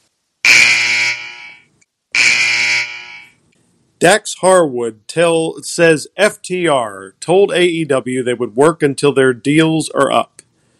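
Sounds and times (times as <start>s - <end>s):
loud harsh buzzer blasts: 0.4s - 3.3s
speech: 4.0s - 10.4s.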